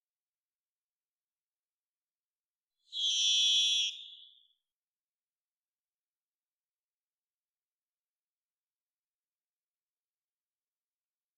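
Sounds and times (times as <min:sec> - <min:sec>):
Varied thrush Ixoreus naevius singing a buzzy whistled note in Washington: 0:02.9 - 0:04.5.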